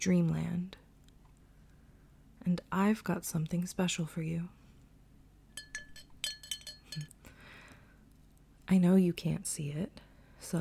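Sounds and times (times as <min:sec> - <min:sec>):
speech: 0:00.0 - 0:00.8, 0:02.4 - 0:04.6, 0:06.9 - 0:07.2, 0:08.7 - 0:10.5
little glass bottle being tapped and handled: 0:05.6 - 0:07.1.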